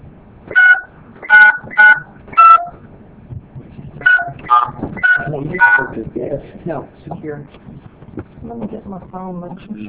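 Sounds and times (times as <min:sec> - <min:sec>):
phone keypad tones as an access code is entered: 0:00.6 - 0:02.8, 0:04.1 - 0:06.0
person speaking over a phone line: 0:05.1 - 0:06.1.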